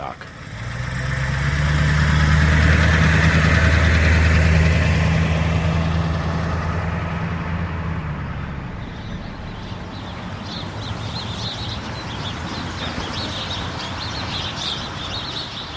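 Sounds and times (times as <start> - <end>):
low rumble of traffic: 0.0 - 15.7
English sparrows chirping in trees outside rest stop doors: 8.6 - 15.7.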